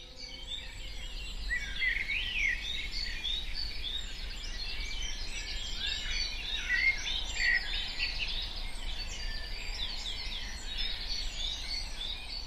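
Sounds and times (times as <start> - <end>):
many birds singing and chirping outdoors: 0.0 - 12.4.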